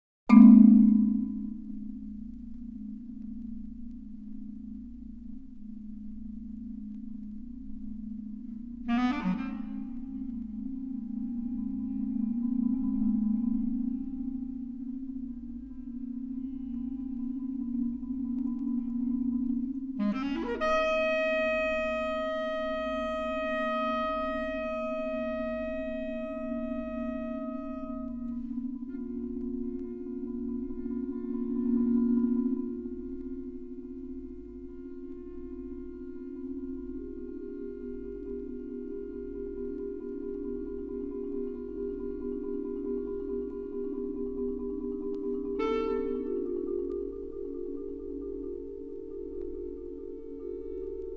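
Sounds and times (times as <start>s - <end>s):
marimba: 0.3s - 51.1s
bass clarinet: 8.8s - 10.7s, 20.0s - 33.0s, 45.2s - 47.1s.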